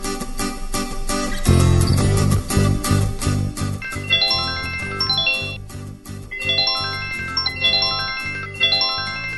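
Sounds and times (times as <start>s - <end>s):
music: 0.0s - 9.3s
mobile phone melodic ringtone in a park: 3.8s - 5.7s, 6.3s - 9.3s.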